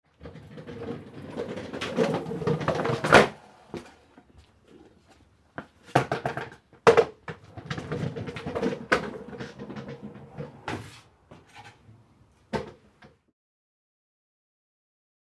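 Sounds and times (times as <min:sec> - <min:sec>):
skateboard passing: 0:00.2 - 0:04.8, 0:05.8 - 0:11.6.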